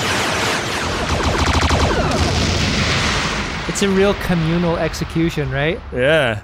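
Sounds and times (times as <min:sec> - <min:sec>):
sci-fi pistol gunfire with overlapping energy blasts: 0:00.0 - 0:02.9
speech: 0:03.8 - 0:06.4.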